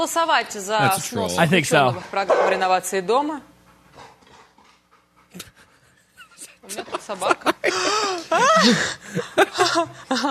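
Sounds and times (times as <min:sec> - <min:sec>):
speech: 0:00.0 - 0:04.1, 0:06.7 - 0:10.2
dog panting in quick breathy bursts: 0:03.2 - 0:07.5
laughter: 0:05.4 - 0:10.2.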